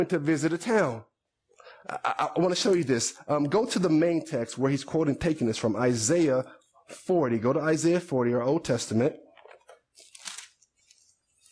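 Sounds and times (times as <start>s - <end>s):
speech: 0.0s - 1.1s, 1.8s - 9.2s
thin Bible pages rustling and turning: 9.4s - 11.5s.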